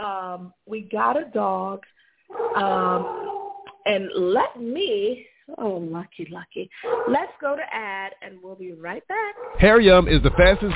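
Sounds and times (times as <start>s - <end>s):
speech: 0.0s - 10.7s
dog barking: 2.3s - 3.8s, 6.8s - 7.4s, 9.4s - 10.7s.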